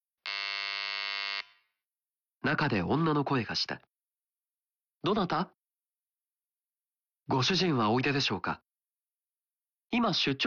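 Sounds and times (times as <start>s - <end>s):
door buzzer at a second-floor apartment in a housing estate: 0.2s - 1.8s
speech: 2.5s - 3.9s, 5.0s - 5.6s, 7.3s - 8.7s, 9.9s - 10.4s.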